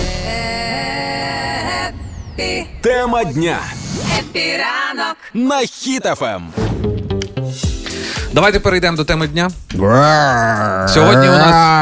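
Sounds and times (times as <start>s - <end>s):
speech: 2.4s - 6.6s, 8.4s - 11.8s
lion roar from film studio logo: 9.8s - 11.8s.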